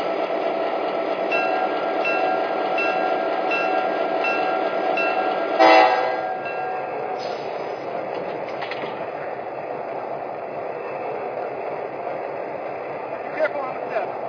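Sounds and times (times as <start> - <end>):
passenger train rumbling on a track at a station: 0.0 - 14.2
passenger train horn: 5.5 - 6.4.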